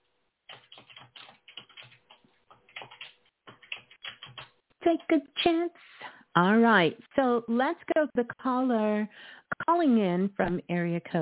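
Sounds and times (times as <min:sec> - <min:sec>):
typing on a computer keyboard: 0:00.5 - 0:04.6
speech: 0:04.9 - 0:11.1.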